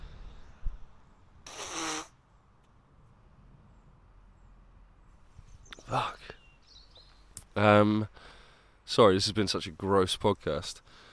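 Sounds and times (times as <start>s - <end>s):
faint noise in a quiet room: 0.0s - 11.1s
nose blowing: 1.4s - 2.2s
speech: 5.9s - 6.2s, 7.6s - 8.3s, 8.9s - 11.0s.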